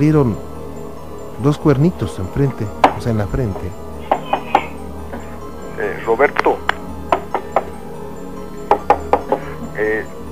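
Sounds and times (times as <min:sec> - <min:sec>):
speech: 0:00.0 - 0:00.5, 0:01.4 - 0:03.8, 0:06.0 - 0:06.6
knocking on a door: 0:02.8 - 0:04.7, 0:08.7 - 0:09.4.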